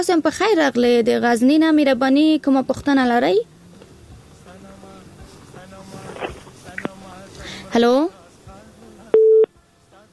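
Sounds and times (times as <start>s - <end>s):
speech: 0.0s - 3.5s, 7.7s - 8.2s
telephone busy signal beep after the call connection dropped: 9.1s - 9.5s.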